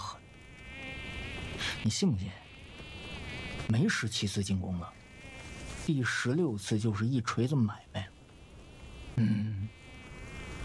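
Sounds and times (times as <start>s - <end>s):
flies buzzing: 0.0s - 6.0s, 8.2s - 10.6s
speech: 1.8s - 2.4s, 3.7s - 5.0s, 5.8s - 8.1s, 9.2s - 9.5s.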